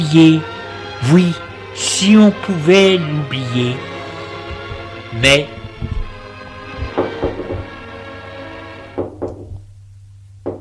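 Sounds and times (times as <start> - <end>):
speech: 0.1 - 3.9, 5.2 - 5.9
knocking on a door: 5.6 - 7.8, 9.0 - 9.7.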